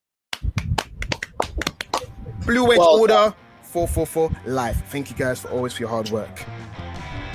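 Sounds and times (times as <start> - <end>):
hands clapping: 0.3 - 2.1
speech: 2.5 - 6.8.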